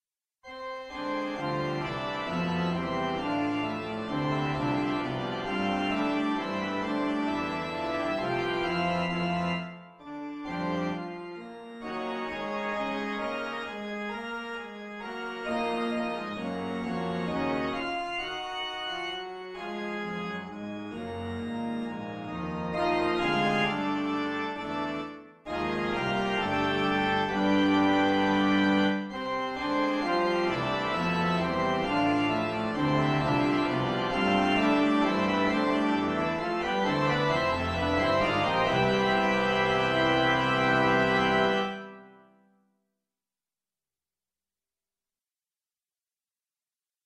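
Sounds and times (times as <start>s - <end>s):
organ fanfare: 0.5s - 42.3s.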